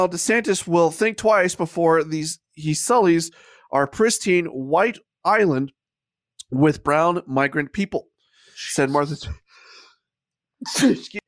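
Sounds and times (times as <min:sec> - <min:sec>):
speech: 0:00.0 - 0:05.8, 0:06.5 - 0:09.4, 0:10.6 - 0:11.2
sneeze: 0:10.6 - 0:11.1.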